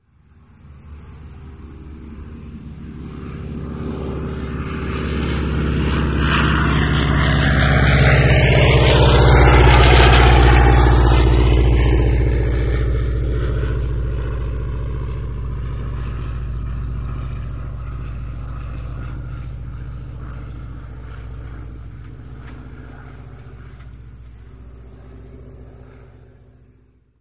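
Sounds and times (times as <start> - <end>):
aircraft passing: 0.0 - 27.2.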